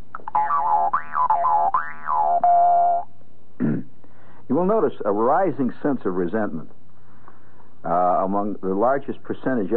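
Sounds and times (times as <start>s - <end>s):
Jew's harp twanging: 0.2s - 3.0s
speech: 4.6s - 6.8s, 7.8s - 9.7s.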